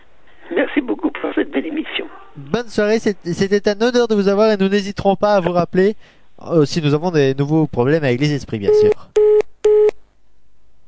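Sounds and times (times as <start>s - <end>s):
speech: 0.6s - 9.1s
telephone busy tone beep after caller hangs up: 8.7s - 9.9s.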